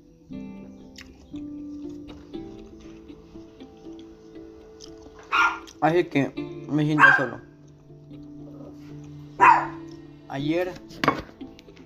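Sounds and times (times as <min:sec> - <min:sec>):
dog barking: 0:05.2 - 0:05.7, 0:07.0 - 0:07.5, 0:09.4 - 0:09.8
speech: 0:05.8 - 0:07.5, 0:10.4 - 0:11.2.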